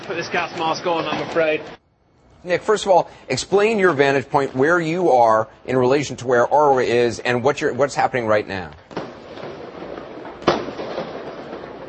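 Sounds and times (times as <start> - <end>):
speech: 0.1 - 1.8, 2.4 - 8.8
firework bang fired toward police during a street protest: 8.9 - 11.8.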